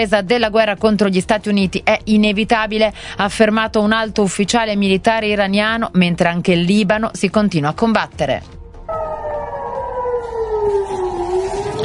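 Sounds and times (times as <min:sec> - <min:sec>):
speech: 0:00.0 - 0:08.6
air raid sirens wailing: 0:08.9 - 0:11.8.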